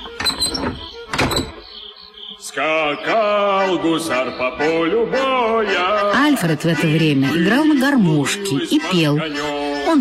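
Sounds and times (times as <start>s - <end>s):
metal door bolt sliding shut: 0.0s - 1.6s
speech: 2.6s - 9.9s.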